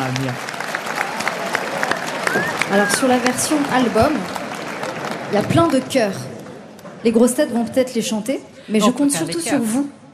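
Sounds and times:
speech: 0.0 - 0.6, 2.7 - 4.4, 5.3 - 6.3, 7.0 - 10.0
studio audience clapping: 0.0 - 6.8
faint voices and whoops: 1.0 - 3.4.

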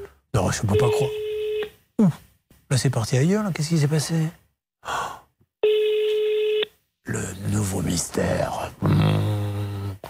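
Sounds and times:
speech: 0.4 - 1.3, 2.0 - 5.0, 7.1 - 9.4
ringback tone from a call to a mobile phone: 0.7 - 1.7, 5.6 - 6.7.

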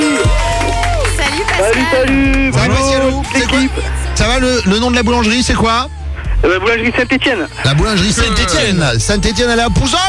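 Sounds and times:
lively crowd clapping and cheering for a radio contestant: 0.0 - 3.9
excited voices calling out over applause: 0.2 - 3.9
speech: 3.6 - 10.0.

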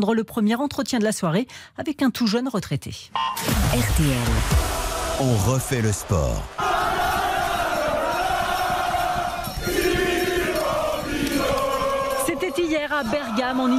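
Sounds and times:
speech: 0.0 - 6.7, 12.7 - 13.7
crowd of cycling supporters chanting a song at a team bus: 4.6 - 13.7.

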